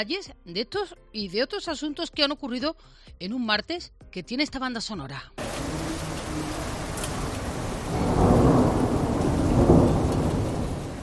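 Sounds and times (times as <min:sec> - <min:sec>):
speech: 0:00.0 - 0:05.4
dense hiss of heavy downpour: 0:05.4 - 0:11.0
low rolling thunder: 0:05.4 - 0:11.0.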